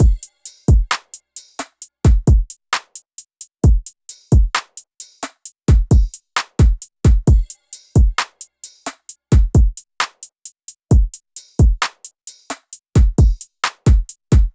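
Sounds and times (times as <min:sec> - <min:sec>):
drum loop: 0:00.0 - 0:14.5.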